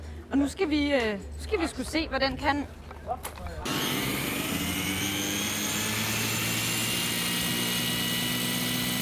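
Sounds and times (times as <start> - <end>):
speech: 0.3 - 4.0
belt sander turned into a power race car running: 3.6 - 9.0.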